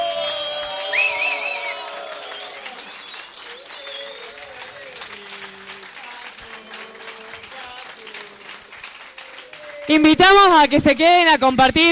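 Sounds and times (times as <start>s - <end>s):
whistles: 0.0s - 4.7s
audience applause: 0.0s - 10.3s
crowd cheering: 0.0s - 10.6s
speech: 9.9s - 11.8s.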